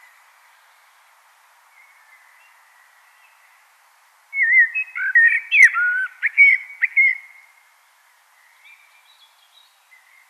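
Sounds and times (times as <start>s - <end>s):
common blackbird warbling fluting whistles: 1.7s - 3.7s, 4.3s - 10.2s.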